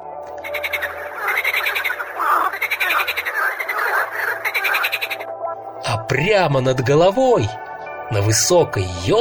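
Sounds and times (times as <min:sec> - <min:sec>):
chorus of frogs croaking by a forest stream: 0:00.0 - 0:05.8
speech: 0:06.2 - 0:09.2.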